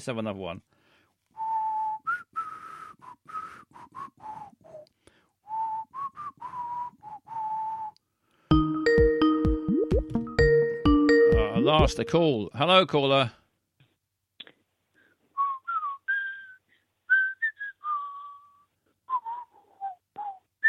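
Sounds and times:
speech: 0.0 - 0.8, 11.7 - 13.4
makeshift whistle blown in short breathy wavering toots: 1.4 - 8.1, 15.4 - 20.6
bright musical jingle: 8.5 - 12.2.

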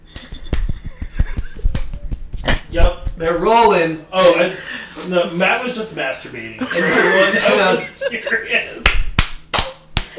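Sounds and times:
laughter: 0.1 - 1.8, 6.6 - 8.9
wet hot dogs dumped onto the ground: 0.1 - 3.3
speech: 2.7 - 8.9.

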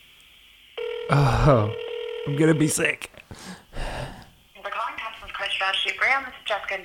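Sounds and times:
telephone ringing while a call is transferred: 0.8 - 2.9
speech: 1.1 - 3.6, 6.1 - 6.8.

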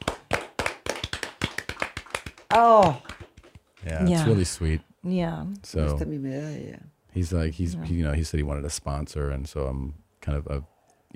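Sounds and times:
hand clapping: 0.0 - 4.1
speech: 2.6 - 3.0, 3.9 - 11.1.

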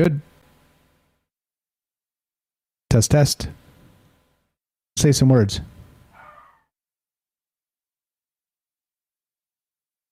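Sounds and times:
speech: 0.0 - 0.3, 2.9 - 3.6, 5.0 - 5.8
female pet dog barking excitedly: 6.1 - 6.7.

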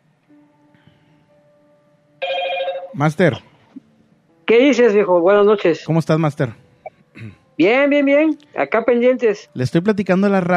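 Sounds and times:
telephone ringing while a call is placed: 2.2 - 3.0
speech: 3.0 - 3.5, 4.5 - 6.6, 7.2 - 10.5.

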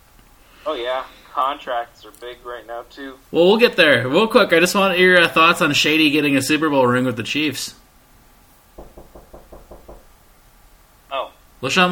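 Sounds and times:
speech: 0.6 - 7.8, 11.6 - 11.9
quick knocks on a door: 8.8 - 10.1.

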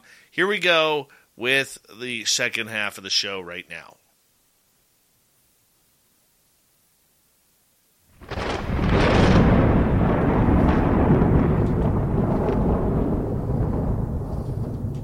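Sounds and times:
speech: 0.3 - 4.0
rolling thunder: 8.2 - 15.0.

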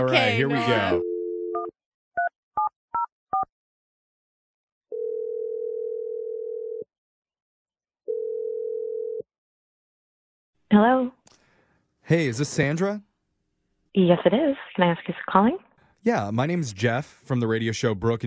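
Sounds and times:
speech: 0.0 - 1.1, 10.7 - 11.2, 12.1 - 13.1, 14.0 - 18.2
telephone dial tone: 0.9 - 1.7, 4.9 - 6.9, 8.1 - 9.3
long steady telephone ringing tones: 4.9 - 6.9, 8.1 - 9.3.

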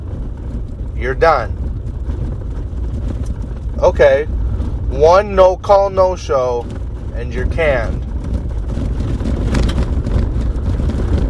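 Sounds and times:
car driving on a dirt road, tyres and engine rumbling: 0.0 - 11.2
speech: 1.0 - 1.6, 3.8 - 8.1.

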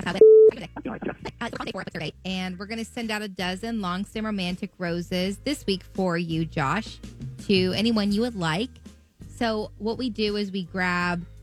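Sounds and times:
speech: 0.0 - 8.8, 9.4 - 11.3
steady telephone tone of a call being dialed: 0.2 - 0.5.

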